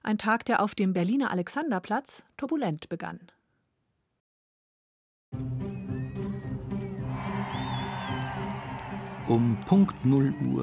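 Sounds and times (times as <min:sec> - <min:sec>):
speech: 0:00.1 - 0:03.4, 0:09.3 - 0:10.6
crowd cheering at a bank branch door on Alexanderplatz Berlin: 0:07.0 - 0:10.6.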